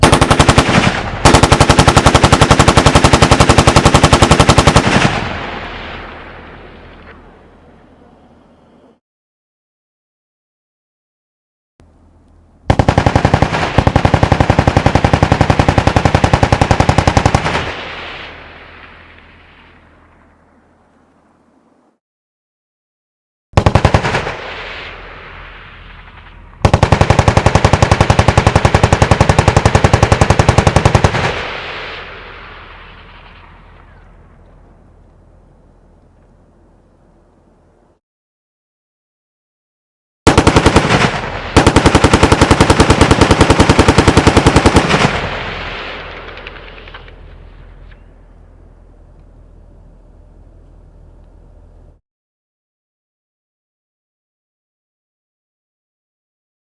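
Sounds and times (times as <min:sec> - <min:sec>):
machine gun firing in a large field: 0:00.0 - 0:05.7, 0:12.7 - 0:18.1, 0:23.6 - 0:24.8, 0:26.6 - 0:32.3, 0:40.3 - 0:47.2.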